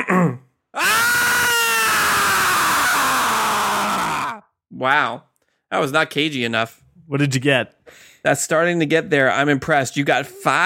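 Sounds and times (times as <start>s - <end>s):
man screaming in rage: 0.8s - 4.5s
speech: 4.8s - 10.6s.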